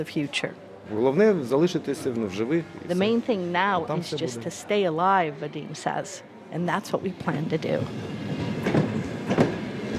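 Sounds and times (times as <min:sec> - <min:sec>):
speech: 0:00.0 - 0:08.4
train arriving at a station in Slovyansk Ukraine: 0:07.0 - 0:09.9
rolling train wheel noise: 0:07.3 - 0:09.9.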